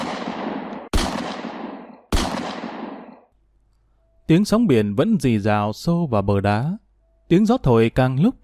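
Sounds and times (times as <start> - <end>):
gunshots at night by the sea near a warehouse: 0.0 - 3.3
speech: 4.3 - 8.4.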